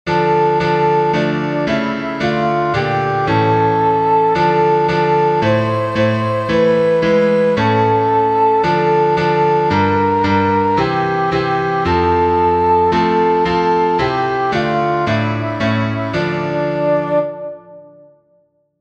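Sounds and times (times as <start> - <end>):
soprano singing: 0.1 - 18.0.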